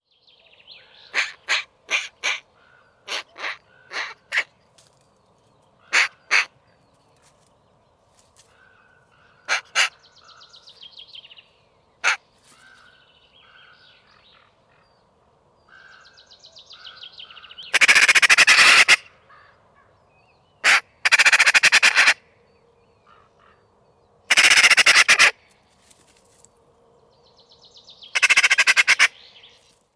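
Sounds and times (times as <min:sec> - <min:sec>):
Pica pica calling: 0:00.8 - 0:04.6, 0:05.8 - 0:06.6, 0:08.6 - 0:10.5, 0:12.0 - 0:12.8, 0:16.8 - 0:19.9, 0:20.6 - 0:22.2, 0:24.3 - 0:25.4, 0:28.1 - 0:29.6.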